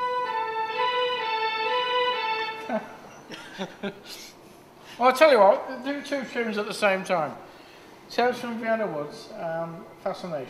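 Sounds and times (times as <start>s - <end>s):
police car siren effect played on an electronic organ: 0.0s - 2.8s
laughter: 2.6s - 4.3s
speech: 2.7s - 7.5s, 8.1s - 10.4s.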